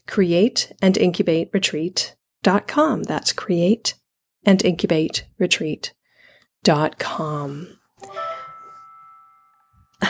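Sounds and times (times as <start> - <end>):
speech: 0.2 - 6.0, 6.6 - 8.3
computer notification chime: 8.0 - 10.0.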